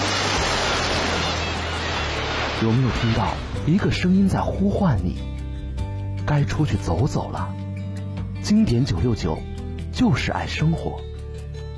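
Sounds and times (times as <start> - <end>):
ocean waves washing on the shore: 0.0 - 4.0
speech: 2.6 - 5.4, 6.3 - 7.6, 8.4 - 11.1.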